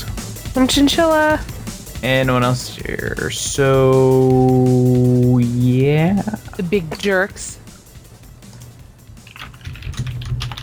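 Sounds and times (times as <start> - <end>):
speech: 0.6 - 7.6
typing on a computer keyboard: 9.2 - 10.6.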